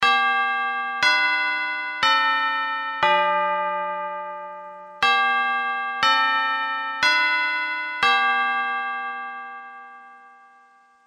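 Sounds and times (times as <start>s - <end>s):
clock chimes: 0.0s - 11.0s.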